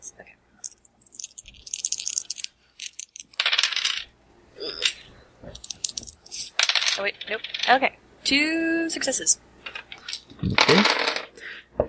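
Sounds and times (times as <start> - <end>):
dice being re-rolled on a cluttered desk: 0.6 - 4.1, 5.6 - 7.8, 9.7 - 11.3
speech: 7.0 - 9.5, 10.4 - 11.1.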